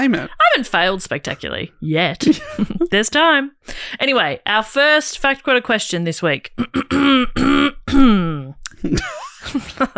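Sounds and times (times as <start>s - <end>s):
speech: 0.0s - 9.9s
person clearing throat with harmonic vocal rasps: 6.6s - 8.5s.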